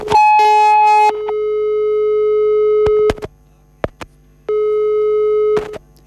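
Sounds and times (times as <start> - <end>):
telephone busy tone after a call is hung up: 0.0 - 3.2, 4.5 - 5.8.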